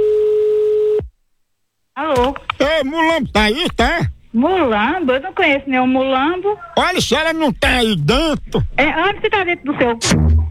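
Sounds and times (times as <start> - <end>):
telephone ringback tone as a call connects: 0.0 - 1.1
speech: 2.8 - 10.4.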